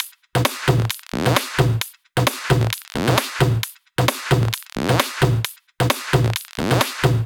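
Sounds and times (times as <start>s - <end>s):
tom-tom drum kit at 132 BPM: 0.0s - 7.2s.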